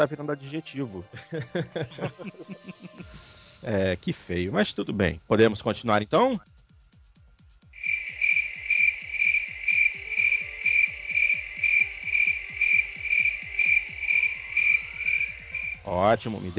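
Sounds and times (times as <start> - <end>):
speech: 0.0 - 6.5, 15.9 - 16.5
laughter: 1.1 - 3.2
crickets chirping: 7.8 - 16.5.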